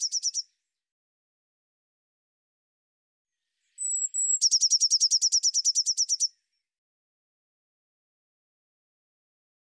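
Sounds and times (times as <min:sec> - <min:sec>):
Eurasian blue tit singing: 0:00.0 - 0:00.6, 0:03.6 - 0:06.4.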